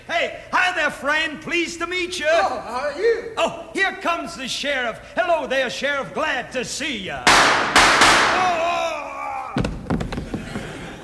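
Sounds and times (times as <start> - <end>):
speech: 0.1 - 8.7
sharp knocks and cracks: 7.3 - 8.6
gunshot bangs: 7.3 - 8.7.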